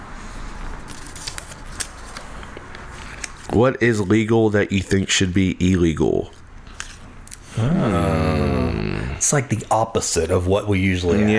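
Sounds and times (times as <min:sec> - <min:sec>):
question card drawn out of a box of cards: 0:00.8 - 0:07.5
speech: 0:03.6 - 0:06.4, 0:07.6 - 0:08.2, 0:09.2 - 0:11.3.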